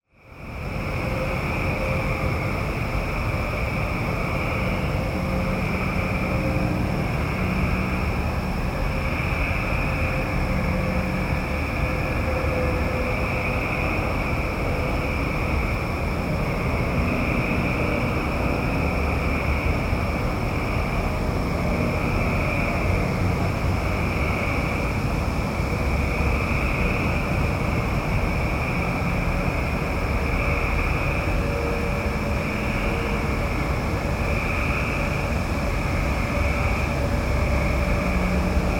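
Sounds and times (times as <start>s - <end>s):
frogs: 0.1s - 38.7s.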